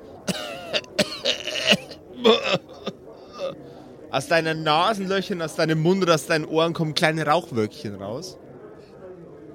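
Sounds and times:
heavy raspy coughing: 0.2s - 3.6s
speech: 0.3s - 1.1s, 4.1s - 8.4s.

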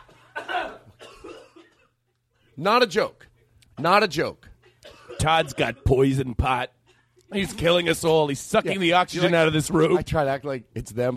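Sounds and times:
man coughing: 0.1s - 2.1s, 4.6s - 6.9s
speech: 2.6s - 4.5s, 5.2s - 11.1s.

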